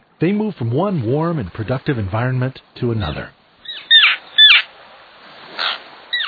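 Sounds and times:
speech: 0.2s - 3.4s
common tern giving harsh grating downward-slurring calls: 3.0s - 4.8s, 5.5s - 6.2s.

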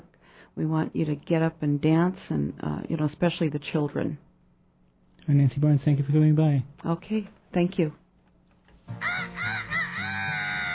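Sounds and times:
speech: 0.6s - 4.3s, 5.3s - 8.0s
rooster crowing: 8.9s - 10.7s.

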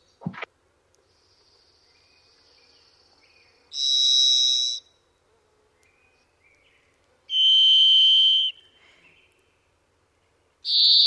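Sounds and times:
robin-sized orange and black thrush giving buzzy whistle-like calls: 3.8s - 4.8s, 7.3s - 8.7s.

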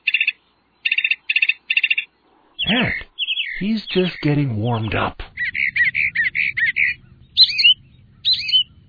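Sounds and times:
mockingbird chirping notes imitating other birds' calls: 0.0s - 8.8s
mockingbird rising whistled phrases: 2.6s - 4.2s, 5.3s - 8.8s
speech: 2.7s - 3.0s, 3.6s - 5.2s
faint low rumble: 3.6s - 8.8s.

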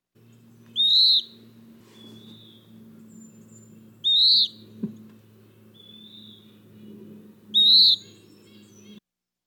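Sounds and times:
low steady hum: 0.1s - 9.0s
western wood pewee calling: 0.7s - 2.6s, 4.0s - 4.6s, 5.8s - 6.5s, 7.5s - 9.0s.

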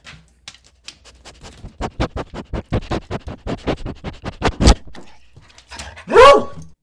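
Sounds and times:
rapid rhythmic scratching at a surface: 0.5s - 5.8s
loud dog bark with a tonal whine: 6.0s - 6.7s.

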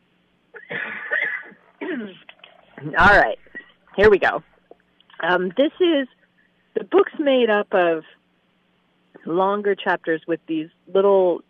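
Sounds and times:
person coughing raspy and throaty: 0.6s - 2.2s
speech: 2.0s - 3.4s, 4.0s - 4.5s, 5.2s - 6.2s, 6.8s - 8.2s, 9.2s - 11.4s.

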